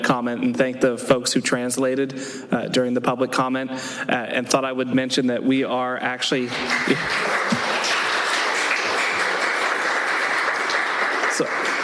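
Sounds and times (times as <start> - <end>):
speech: 0.1 - 7.4, 11.4 - 11.6
audience applause at a city council meeting in Santa Rosa: 6.4 - 11.8.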